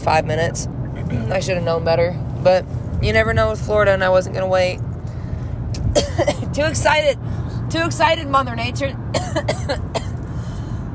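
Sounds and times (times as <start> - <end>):
speech: 0.0 - 4.9, 6.0 - 10.0
steady low rumble of noise: 0.0 - 10.9
person coughing harshly: 5.9 - 6.5, 9.2 - 10.2.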